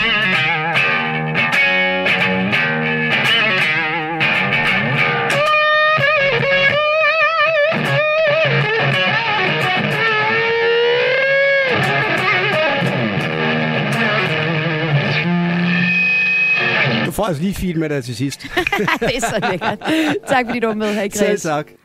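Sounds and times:
heavily distorted electric guitar riffs with bent notes and quick runs: 0.0 - 17.3
speech: 17.3 - 21.8
laughter: 18.4 - 21.4.

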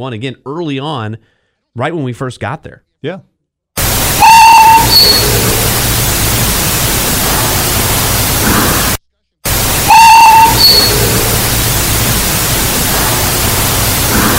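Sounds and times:
speech: 0.0 - 3.3, 4.9 - 5.7
steady static hiss on an EVP recorder: 3.8 - 14.3
short loud whistle: 4.1 - 5.8, 9.8 - 11.5.

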